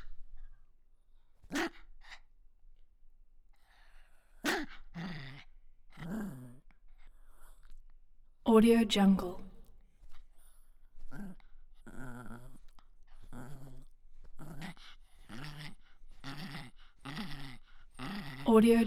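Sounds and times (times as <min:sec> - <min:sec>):
Toy Poodle growling: 0:03.8 - 0:07.7, 0:11.0 - 0:18.8
speech: 0:08.5 - 0:09.4, 0:18.6 - 0:18.8.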